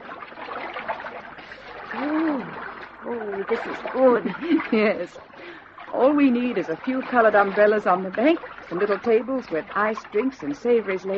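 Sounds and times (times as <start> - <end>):
water sloshing as people wade into a cold stream: 0.0 - 11.1
speech: 1.9 - 11.1.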